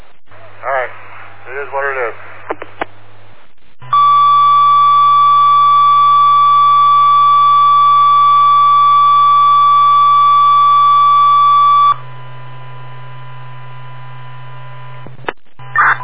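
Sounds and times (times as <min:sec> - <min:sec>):
low electrical hum on a fire department radio channel: 0:00.0 - 0:16.0
speech: 0:01.5 - 0:02.3
fire dispatch alert tone over a fire department radio channel: 0:03.9 - 0:12.0, 0:15.7 - 0:16.0.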